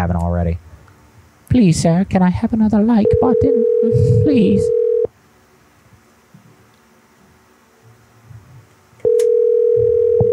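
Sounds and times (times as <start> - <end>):
speech: 0.0 - 0.7, 1.5 - 4.8
outgoing phone call line tone: 3.0 - 5.1, 9.0 - 10.3.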